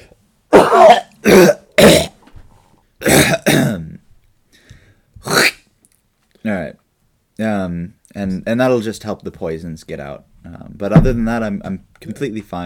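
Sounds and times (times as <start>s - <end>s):
person clearing throat: 0.5s - 2.2s, 3.0s - 4.0s, 5.2s - 5.6s
person coughing: 0.5s - 2.2s, 3.0s - 3.9s
speech: 7.4s - 12.6s.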